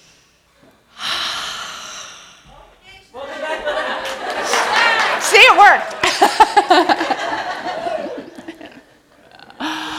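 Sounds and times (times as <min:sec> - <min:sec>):
group at a gathering breathing in deeply: 0:00.0 - 0:02.5, 0:09.6 - 0:09.9
laughter: 0:03.2 - 0:09.6.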